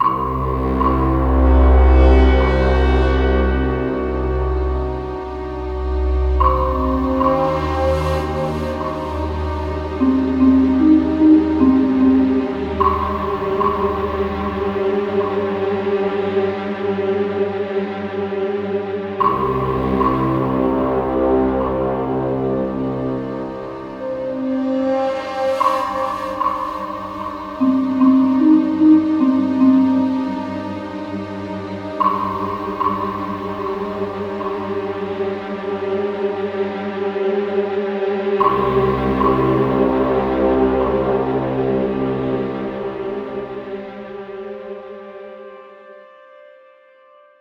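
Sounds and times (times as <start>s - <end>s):
ambient music from Vietnam without drums: 0.0s - 47.3s.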